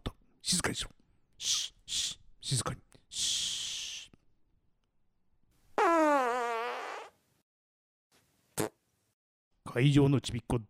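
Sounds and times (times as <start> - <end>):
speech: 0.5 - 1.6, 9.8 - 10.6
fart: 5.8 - 7.2, 8.6 - 8.8.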